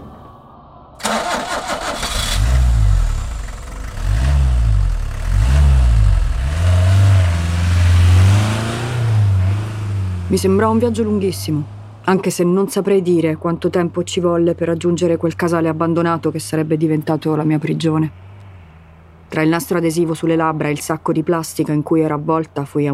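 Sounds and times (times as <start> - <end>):
van engine starting and driving off: 1.0 - 11.9
speech: 10.4 - 18.3, 19.3 - 22.9.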